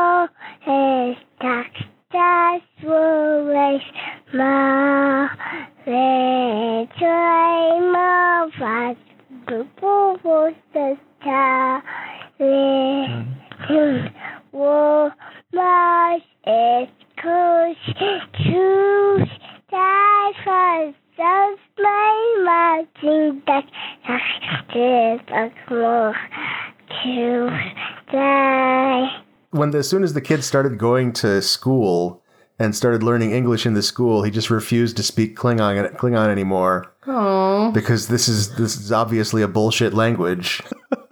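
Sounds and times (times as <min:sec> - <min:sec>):
toddler singing an anthem-like tune: 0:00.0 - 0:26.3, 0:26.9 - 0:29.2
speech: 0:29.8 - 0:36.9, 0:37.8 - 0:40.7
laughter: 0:40.5 - 0:41.0.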